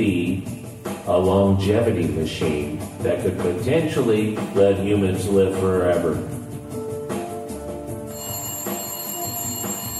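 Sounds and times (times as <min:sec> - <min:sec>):
speech: 0:01.1 - 0:06.4
telephone ringing: 0:08.0 - 0:09.9.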